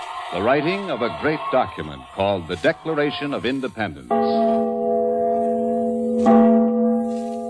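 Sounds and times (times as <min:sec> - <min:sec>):
speech: 0:00.3 - 0:04.6, 0:06.2 - 0:06.4
large bell ringing: 0:04.1 - 0:07.4.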